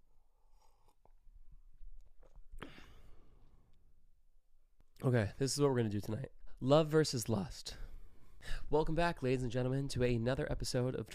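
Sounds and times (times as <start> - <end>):
person sipping a hot drink from a mug: 0.2 - 3.1
speech: 5.0 - 7.8, 8.4 - 11.1.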